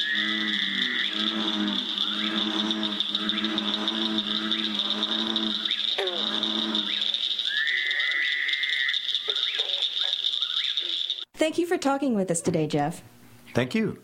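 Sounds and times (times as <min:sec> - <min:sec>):
frog chorus high-pitched peeping drone: 0:00.0 - 0:11.3
speech: 0:11.5 - 0:14.0.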